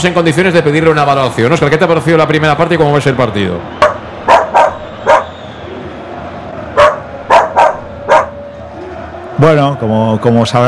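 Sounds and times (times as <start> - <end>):
speech: 0.0 - 3.8, 9.4 - 10.6
dog barking: 3.8 - 5.3, 6.8 - 8.4.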